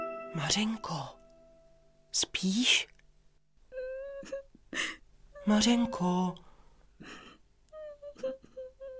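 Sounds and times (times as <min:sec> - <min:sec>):
speech: 0:00.4 - 0:01.1, 0:02.1 - 0:02.9, 0:05.5 - 0:06.5
girl crying and whimpering: 0:03.7 - 0:06.1, 0:07.7 - 0:08.9.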